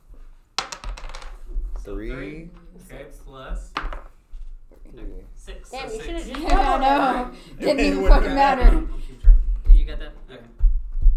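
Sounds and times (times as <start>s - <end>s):
dice tumbling across a hard tabletop: 0.2s - 1.9s
speech: 1.8s - 4.0s, 4.8s - 9.2s
laughter: 5.7s - 9.3s.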